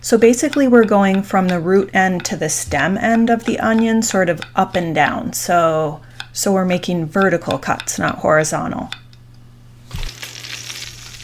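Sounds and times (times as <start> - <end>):
speech: 0.0 - 9.0
bacon sizzling in a skillet with crackling hiss and pops: 9.9 - 11.2.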